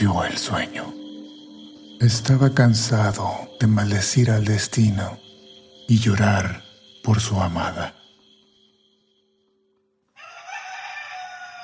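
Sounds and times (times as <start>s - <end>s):
speech: 0.0s - 1.0s, 2.0s - 5.2s, 5.9s - 8.0s
rooster crowing at daybreak: 10.1s - 11.6s.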